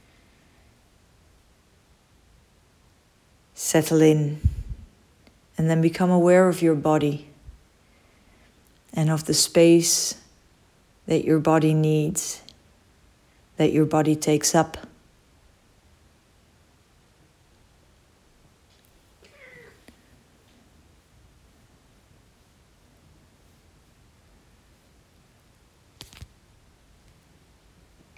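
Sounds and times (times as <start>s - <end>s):
steady hiss of noise: 0.0s - 28.1s
speech: 3.6s - 4.5s, 5.6s - 7.3s, 9.0s - 10.2s, 11.1s - 12.4s, 13.6s - 14.9s
soft house cat meow: 19.2s - 20.0s.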